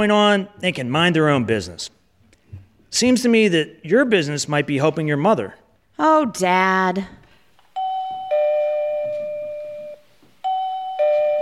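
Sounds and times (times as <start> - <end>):
speech: 0.0 - 2.0, 2.9 - 7.2
two-tone doorbell chiming ding-dong: 7.8 - 11.3.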